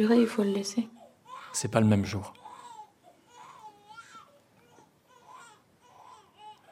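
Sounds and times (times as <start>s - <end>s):
speech: 0.0s - 2.4s
baby crying in rising and falling wails: 1.0s - 1.6s, 2.4s - 6.7s.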